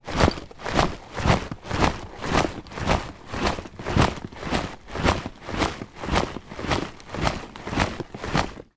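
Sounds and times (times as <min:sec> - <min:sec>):
soldier backpack bag movement while marching: 0:00.0 - 0:08.7.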